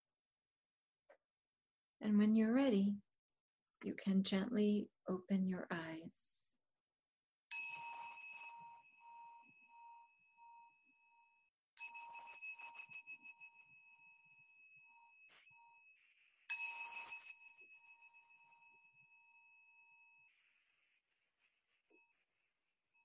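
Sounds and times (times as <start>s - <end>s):
speech: 2.0s - 3.0s, 3.8s - 6.5s
meditation bell ringing: 7.5s - 20.5s.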